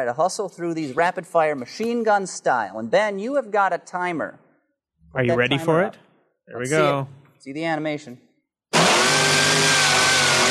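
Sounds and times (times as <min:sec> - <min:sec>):
speech: 0:00.0 - 0:04.4, 0:05.1 - 0:08.2
car engine revving very high: 0:08.8 - 0:10.4.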